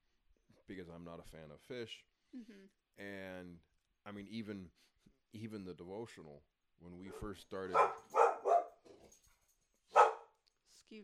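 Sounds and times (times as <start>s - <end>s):
speech: 0.7s - 8.2s
dog barking: 7.1s - 9.0s, 9.9s - 10.3s.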